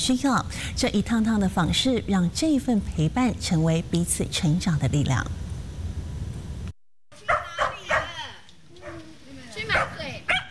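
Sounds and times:
speech: 0.0s - 5.4s
dog barking and yipping at a home in Xiulin Township, Hualien: 7.2s - 9.1s, 9.7s - 10.4s.

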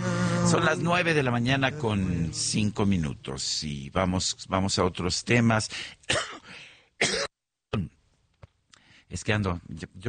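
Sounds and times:
speech: 0.5s - 6.4s, 9.1s - 10.0s
person with a mild cold coughing: 6.1s - 7.4s.

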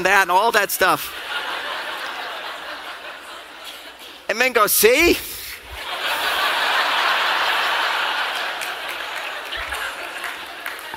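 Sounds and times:
speech: 0.0s - 1.4s, 4.3s - 5.4s
laughter: 1.1s - 4.3s, 5.6s - 10.9s
scattered applause from a small audience: 6.6s - 10.9s.

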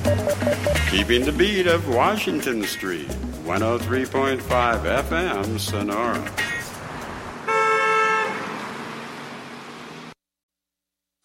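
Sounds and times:
steady wash of traffic noise: 0.0s - 3.4s, 4.9s - 10.2s
car horn blaring in a traffic jam: 0.1s - 1.3s, 7.5s - 8.6s
speech: 0.2s - 6.5s.

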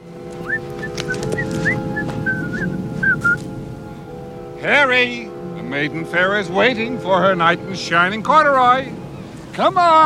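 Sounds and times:
man whistling a bouncy cheerful tune: 0.4s - 3.5s
speech: 4.6s - 9.0s, 9.6s - 10.0s.

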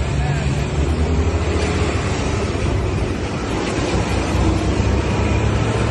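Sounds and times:
queue of diesel vehicles idling at a petrol station in Tehran Iran: 0.0s - 5.9s.

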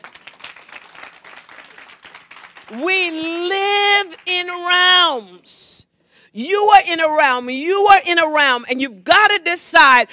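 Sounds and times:
audience clapping hands: 0.0s - 2.8s
speech: 2.7s - 3.5s, 4.4s - 5.7s, 6.4s - 10.1s.

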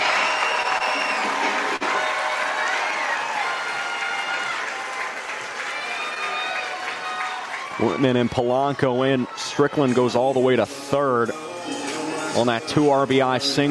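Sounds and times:
stadium crowd applauding at a baseball game: 0.0s - 10.3s
stadium crowd cheering at a baseball game: 0.0s - 12.4s
speech: 7.8s - 11.8s, 12.4s - 13.6s.

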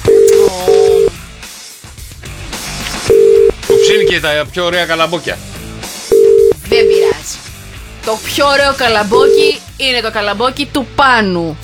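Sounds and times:
electronic telephone tones as a phone call is placed: 0.0s - 1.1s, 3.1s - 4.2s, 6.1s - 7.2s, 9.1s - 9.6s
telephone busy tone: 0.0s - 1.2s, 3.1s - 4.2s, 6.1s - 7.2s, 9.1s - 9.6s
speech: 4.1s - 5.5s, 8.0s - 11.6s.

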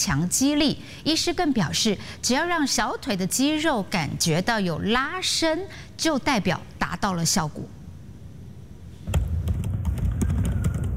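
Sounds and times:
speech: 0.0s - 7.8s
steady low room hum: 0.0s - 10.9s
office worker typing on a computer keyboard: 9.4s - 10.9s.

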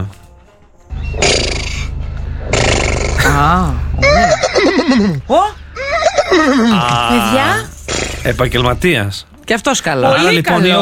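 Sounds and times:
steady low hum: 0.9s - 9.4s
speech: 3.4s - 5.6s, 6.3s - 10.8s
person imitating a horse neigh with their voice: 4.0s - 5.1s, 5.8s - 7.6s.

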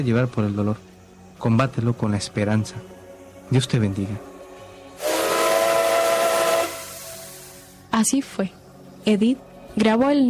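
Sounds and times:
speech: 0.0s - 4.3s, 8.0s - 10.2s
steam train whistle: 5.0s - 7.8s.

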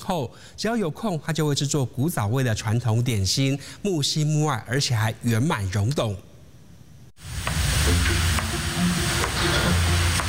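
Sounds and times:
speech: 0.1s - 6.3s
food sizzling while frying in a hot pan: 7.2s - 10.2s.

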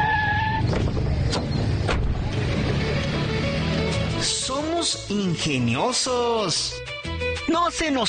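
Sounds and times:
taxi tires squealing as it brakes to a stop: 0.0s - 4.2s
taxi engine rumble: 0.0s - 5.6s
road noise: 0.0s - 7.3s
speech: 5.0s - 6.9s, 7.5s - 8.0s.

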